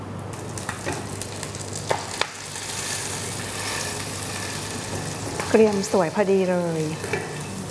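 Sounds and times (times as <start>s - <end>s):
fish frying skin-down in a hot pan: 0.4s - 7.6s
scrapes in a hot frying pan: 2.4s - 5.8s, 6.8s - 7.6s
speech: 5.5s - 7.3s.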